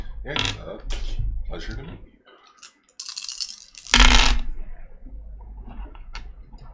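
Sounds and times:
speech: 0.3 - 2.1
dice scooped up and rolled across a hard surface in a tabletop game: 2.6 - 4.4.

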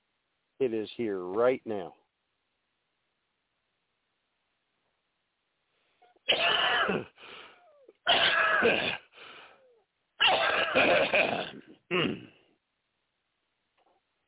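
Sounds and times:
speech: 0.6 - 2.0, 8.6 - 9.0, 10.8 - 12.3
harsh raspy wheezy coughing fit: 6.2 - 9.1, 10.2 - 12.4.

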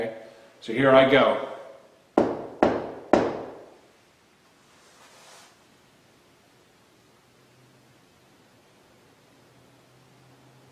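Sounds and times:
speech: 0.1 - 1.5
firm knocks on a solid surface as a signal: 2.2 - 3.7.

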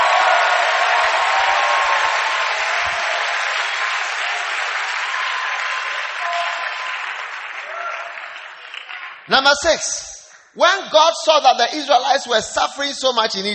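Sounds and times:
audience clapping and cheering loudly: 0.0 - 9.6
speech: 9.3 - 13.5.

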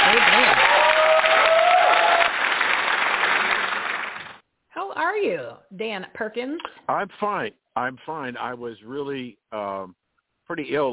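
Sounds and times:
crowd applauding: 0.0 - 4.4
whoops or voices over applause: 0.2 - 2.4
speech: 5.8 - 10.9.

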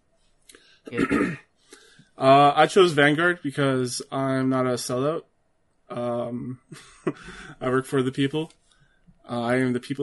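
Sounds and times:
speech: 0.9 - 1.4, 2.2 - 5.3, 5.9 - 8.6, 9.3 - 10.0
rough rasping throat clearing: 0.9 - 1.5.

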